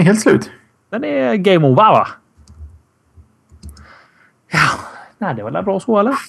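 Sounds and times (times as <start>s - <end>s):
speech: 0.0s - 2.2s, 4.5s - 6.2s
sharp clicks: 2.4s - 2.8s, 3.4s - 3.9s.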